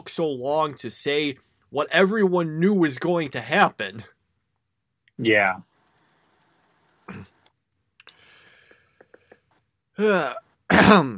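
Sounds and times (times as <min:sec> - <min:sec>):
speech: 0:00.0 - 0:04.2, 0:05.2 - 0:05.7, 0:10.0 - 0:11.1
person clearing throat: 0:07.1 - 0:07.4, 0:10.0 - 0:11.1.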